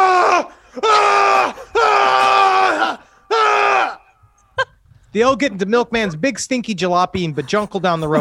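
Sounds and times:
person screaming in a burning house: 0:00.0 - 0:04.1
speech: 0:05.2 - 0:08.1
laughter: 0:07.0 - 0:08.1.

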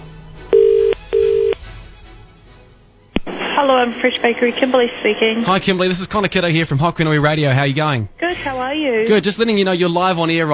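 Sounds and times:
telephone ringing tones on a call to a bakery: 0:00.5 - 0:01.6
speech: 0:03.6 - 0:10.5.

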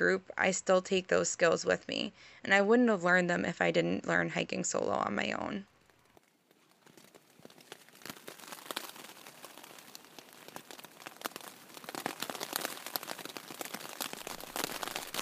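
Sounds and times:
speech: 0:00.0 - 0:05.7
rain pattering on tent fabric during an overnight hike: 0:05.7 - 0:15.1.

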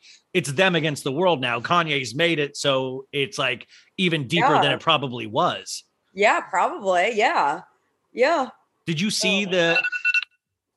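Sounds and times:
speech: 0:00.3 - 0:10.0
phone alarm chiming bright electronic tones: 0:09.2 - 0:10.2.

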